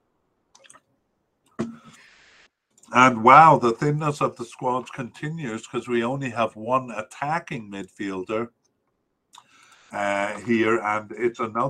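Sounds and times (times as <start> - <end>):
soft wet trickle: 0.5 - 1.0
speech: 2.9 - 8.6, 9.9 - 11.6
faint clicks: 8.6 - 9.9.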